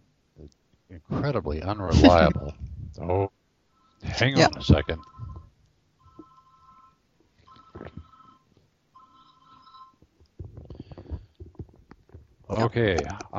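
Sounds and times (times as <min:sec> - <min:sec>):
speech: 0:00.4 - 0:03.3, 0:04.2 - 0:05.1, 0:12.6 - 0:13.3
telephone ringing in electronic trills: 0:03.8 - 0:10.1.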